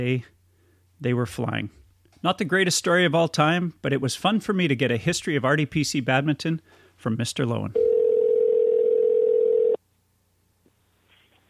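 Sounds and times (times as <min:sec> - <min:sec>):
speech: 0:00.0 - 0:00.4, 0:01.0 - 0:07.9
telephone dial tone: 0:07.8 - 0:09.8.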